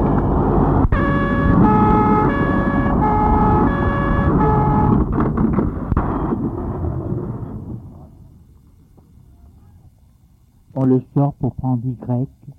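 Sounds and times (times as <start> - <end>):
two-tone siren of arriving police and firefighters: 0.0 - 5.1
heavy emergency vehicle engine rumble: 0.0 - 11.7
road noise: 0.0 - 12.3
speech: 10.9 - 12.5.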